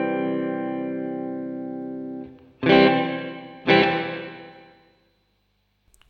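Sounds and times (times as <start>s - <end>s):
electric guitar chords played through a reverb pedal in a small room: 0.0s - 4.8s.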